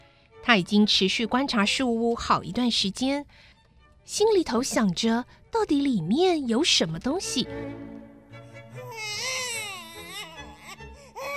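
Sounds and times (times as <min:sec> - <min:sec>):
speech: 0:00.5 - 0:03.5, 0:04.1 - 0:08.0
infant crying: 0:08.7 - 0:11.3.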